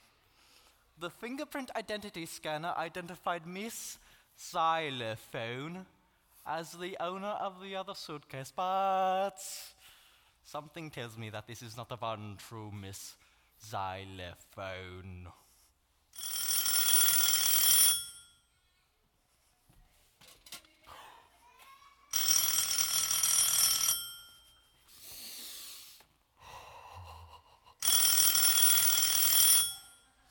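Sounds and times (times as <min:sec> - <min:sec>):
speech: 0:01.0 - 0:09.8, 0:10.4 - 0:15.4
phone built into a shoe ringing: 0:16.2 - 0:18.5, 0:22.1 - 0:24.7, 0:27.8 - 0:30.2
soft shuffling: 0:19.2 - 0:20.4.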